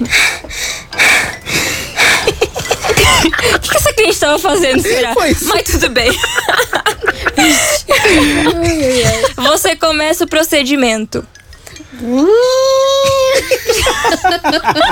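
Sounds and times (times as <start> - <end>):
woman client panting out of breath arriving at a studio: 0.0 - 3.8, 7.1 - 9.4
laughter: 2.0 - 9.7, 13.0 - 14.8
speech: 4.3 - 6.4, 7.4 - 12.9, 13.6 - 14.8
young child crying: 12.0 - 13.6.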